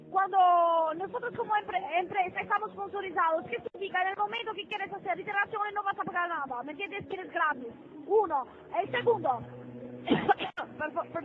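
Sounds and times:
speech: 0.2 - 11.2
smoker's cough: 10.1 - 10.7.

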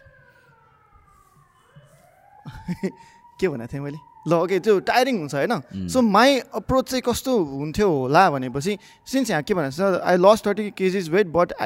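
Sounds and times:
siren sounding outside: 0.0 - 11.6
speech: 2.7 - 11.6.

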